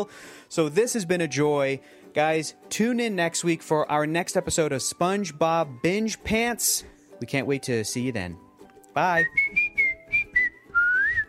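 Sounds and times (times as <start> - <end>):
speech: 0.0 - 8.4, 9.0 - 9.7
person whistling a short tune: 9.1 - 11.2.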